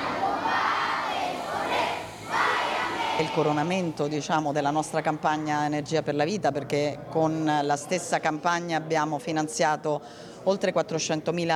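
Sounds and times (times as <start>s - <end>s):
large group of children singing the national anthem in chorus: 0.0s - 3.7s
speech: 3.2s - 11.5s.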